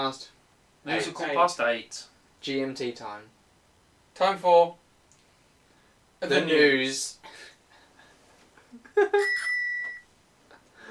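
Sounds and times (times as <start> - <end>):
speech: 0.0 - 3.4, 4.2 - 4.8, 6.2 - 7.5, 9.0 - 9.6
faint noise: 0.0 - 10.8
bicycle bell ringing: 9.2 - 10.0.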